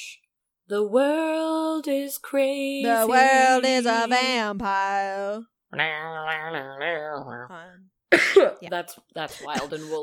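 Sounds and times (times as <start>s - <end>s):
speech: 0.0s - 10.0s
strained vocal groan: 5.7s - 7.8s
choking cough: 8.1s - 8.6s.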